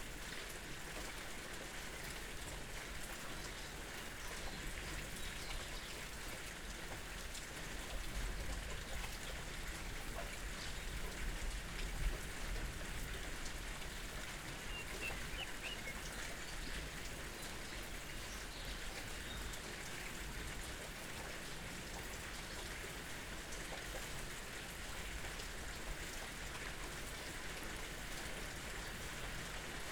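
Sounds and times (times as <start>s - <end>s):
steady dense rain: 0.0s - 29.9s
faint bird calls: 14.6s - 16.5s.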